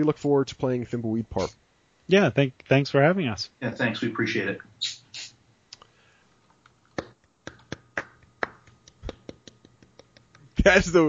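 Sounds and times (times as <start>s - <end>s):
speech: 0.0s - 4.9s, 10.6s - 11.0s
sparse hand clapping applause from a few people: 7.0s - 10.2s.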